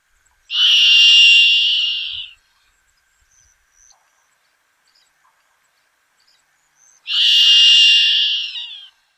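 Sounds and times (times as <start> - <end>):
crested serpent eagle calling on Ishigaki: 0.5 - 2.4, 7.1 - 9.0.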